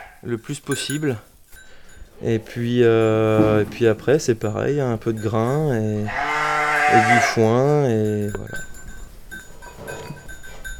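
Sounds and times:
young goats bleating: 0.0s - 0.3s, 6.0s - 7.6s
animal bells ringing in a farmyard: 0.0s - 10.7s
speech: 0.2s - 1.3s, 2.2s - 6.3s, 6.9s - 8.7s.

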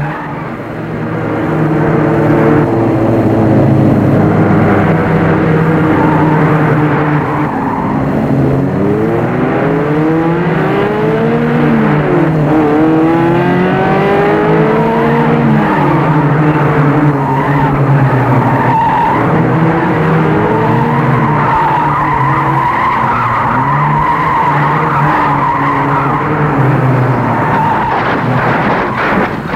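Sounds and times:
car tires squealing and skidding on a wet slippery road after rain: 0.0s - 0.6s, 4.8s - 8.4s, 14.9s - 29.5s
car engine roar: 0.0s - 29.5s.

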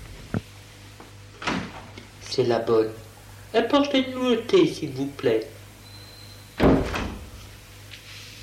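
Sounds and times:
door swinging shut: 1.4s - 1.9s, 6.6s - 7.4s
speech: 2.3s - 5.6s.

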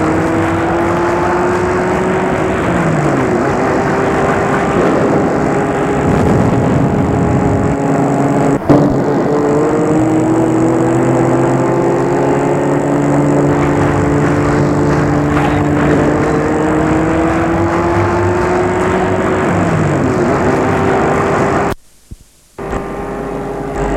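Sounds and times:
car engine roaring while speeding: 0.0s - 21.8s, 22.6s - 23.9s.

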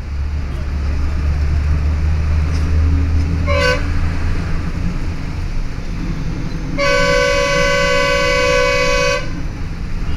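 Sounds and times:
bus engine rumble: 0.0s - 10.1s
sustained horn-like tone: 3.4s - 3.9s, 6.8s - 9.4s.

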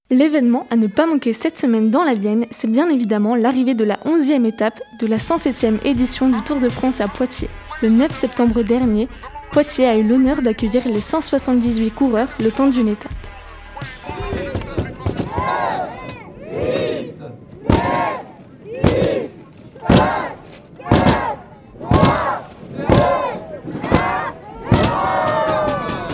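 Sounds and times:
speech: 0.1s - 14.6s
lively background of many voices: 0.6s - 26.1s
large crowd chanting a countdown at a cycling stage finish: 5.5s - 26.1s
sharp percussive bangs: 13.8s - 17.0s, 17.6s - 26.1s.

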